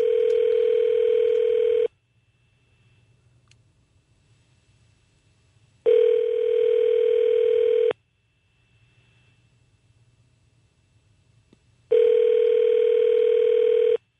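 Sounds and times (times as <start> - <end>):
telephone ringback tone on an outgoing call to Damascus Syria: 0.0 - 1.9, 5.9 - 7.9, 11.9 - 14.0.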